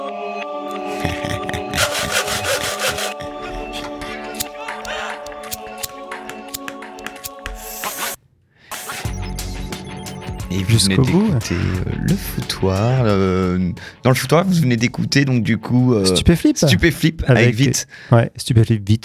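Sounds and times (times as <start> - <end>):
laughter: 0.7 - 5.2
wood being sawn in a carpentry workshop: 1.6 - 3.4
speech: 10.7 - 19.0.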